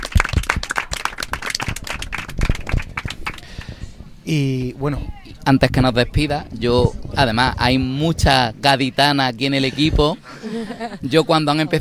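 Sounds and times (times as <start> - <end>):
small team applauding themselves: 0.0 - 3.8
speech: 4.2 - 11.7
laughter: 9.6 - 11.7.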